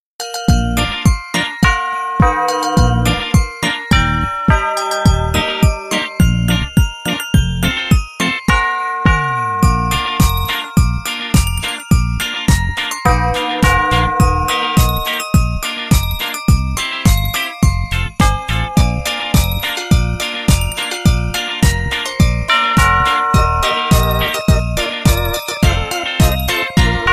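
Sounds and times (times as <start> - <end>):
Santa Claus bell ringing: 0.2 - 27.1.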